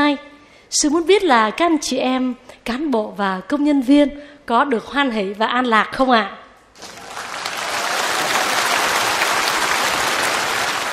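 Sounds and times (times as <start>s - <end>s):
speech: 0.1s - 6.9s
crowd applauding in a large room: 6.8s - 10.9s.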